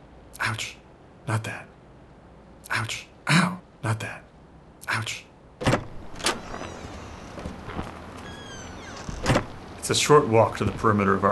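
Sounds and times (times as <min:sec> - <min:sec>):
speech: 0:00.5 - 0:01.8, 0:02.7 - 0:04.3, 0:05.0 - 0:05.3, 0:09.9 - 0:11.2
sliding door clunks: 0:05.6 - 0:09.7.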